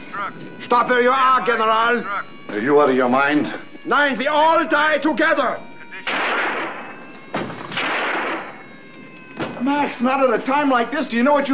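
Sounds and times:
speech: 0.2 - 6.2, 9.6 - 11.5
gunshots: 6.0 - 8.6.

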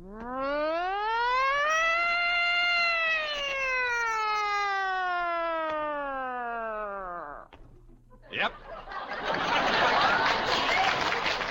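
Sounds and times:
wailing siren sound effect: 0.0 - 7.5
laughter: 8.1 - 11.4
speech: 8.4 - 8.6.

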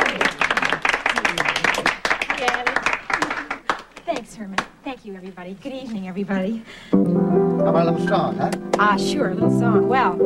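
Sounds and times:
audience applause: 0.0 - 4.0
speech: 5.0 - 10.2.

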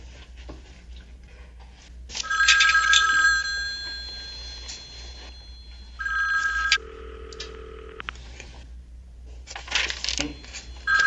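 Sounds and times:
old-style telephone bell ringing with a metallic clatter: 2.2 - 8.0, 10.4 - 11.0.

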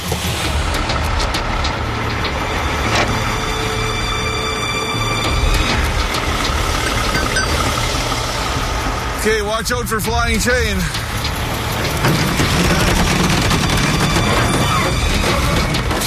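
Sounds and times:
knocking and rattling of a truck engine: 0.0 - 3.8, 5.2 - 9.0, 10.8 - 16.0
truck engine running during towing: 0.0 - 16.0
speech: 9.2 - 11.2.

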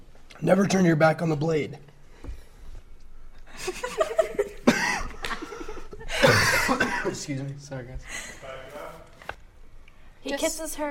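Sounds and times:
speech: 0.4 - 1.9, 7.1 - 8.6, 10.2 - 10.8
laughter: 3.5 - 7.3
coughing fit with ragged breaths: 4.6 - 5.2, 6.1 - 7.3.

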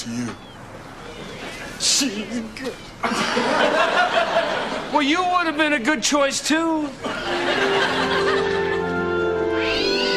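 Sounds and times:
speech: 1.8 - 8.0
laughter: 3.0 - 5.1, 6.9 - 9.3
cat giving a drawn-out wavering yowl: 9.5 - 10.1.

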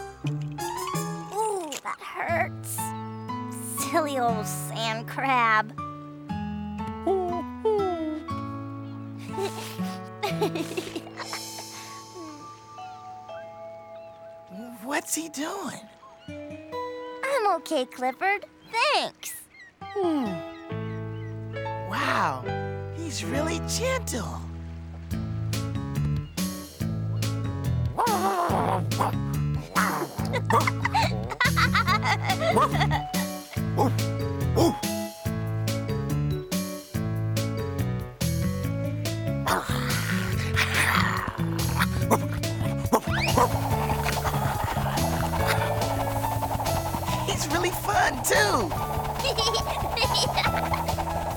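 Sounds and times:
music playing: 0.0 - 17.6, 21.4 - 51.3
speech: 3.9 - 5.8, 15.2 - 15.9, 17.6 - 20.4, 22.0 - 24.4
laughter: 9.3 - 11.5, 30.0 - 33.3, 47.4 - 50.9
dog barking and yipping playfully: 41.6 - 51.3.

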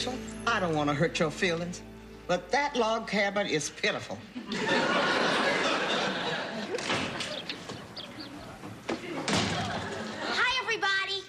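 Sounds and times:
speech: 0.0 - 5.2
scattered laughter: 4.3 - 10.6
door opening and closing with a solid thud: 6.7 - 10.1
murmuring voices: 7.2 - 10.3.

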